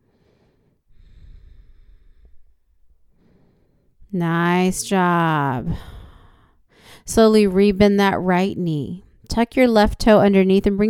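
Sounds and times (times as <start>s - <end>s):
deep heavy breathing during a yoga stretch: 0.0s - 4.1s, 5.6s - 7.1s
speech: 4.1s - 6.0s, 7.1s - 10.8s.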